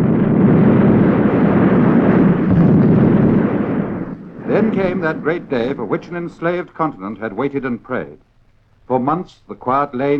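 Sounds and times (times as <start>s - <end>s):
army artillery barrage: 0.0s - 7.3s
speech: 4.7s - 8.3s, 8.9s - 10.1s.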